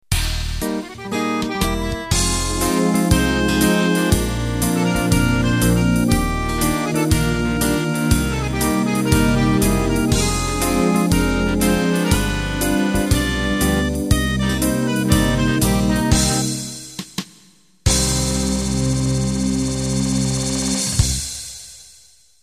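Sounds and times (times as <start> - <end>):
Euro dance music beat ending: 0.0 - 22.0.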